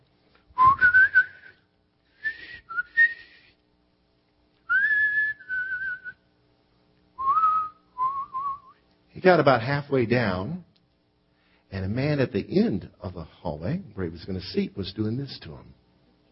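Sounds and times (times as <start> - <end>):
person whistling a slow hymn-like tune: 0.6 - 3.6, 4.7 - 6.2, 7.2 - 8.8
speech: 9.2 - 10.7, 11.7 - 15.8.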